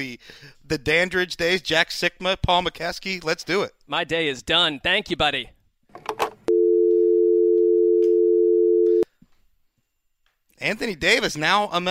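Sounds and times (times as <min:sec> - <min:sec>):
speech: 0:00.0 - 0:05.6, 0:10.6 - 0:11.8
telephone dial tone after hanging up: 0:06.5 - 0:09.1.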